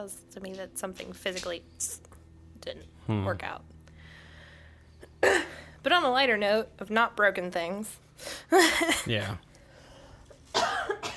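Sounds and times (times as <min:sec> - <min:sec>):
speech: 0:00.0 - 0:02.0, 0:02.6 - 0:03.7, 0:05.2 - 0:09.5
loud cough with a rasping tail: 0:05.2 - 0:05.6, 0:10.5 - 0:11.1.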